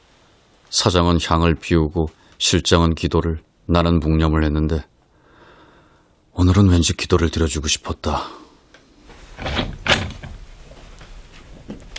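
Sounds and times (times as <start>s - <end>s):
speech: 0.7s - 4.9s, 6.4s - 8.4s
bathroom door thud: 9.4s - 10.4s
knocks and rattles of a bathroom door latch: 9.4s - 10.4s.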